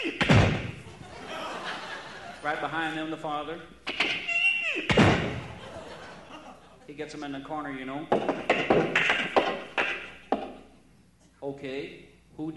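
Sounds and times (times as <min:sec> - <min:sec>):
door banging shut: 0:00.2 - 0:00.8, 0:04.9 - 0:05.6
laughter: 0:00.8 - 0:02.8, 0:05.4 - 0:07.0
speech: 0:02.4 - 0:05.4, 0:06.9 - 0:09.0, 0:11.5 - 0:12.5.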